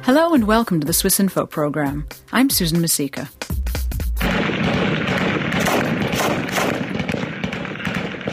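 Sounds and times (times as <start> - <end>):
speech: 0.1 - 3.4
dense gunfire from fighting in the ancient Syrian city of Palmyra during the civil war: 4.2 - 8.3
heavy low boom from fighting in the ancient Syrian city of Palmyra: 4.2 - 8.3.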